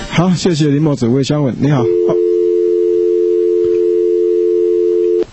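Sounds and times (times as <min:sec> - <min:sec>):
speech: 0:00.2 - 0:02.1
telephone busy tone on a call failing to connect: 0:01.8 - 0:05.3.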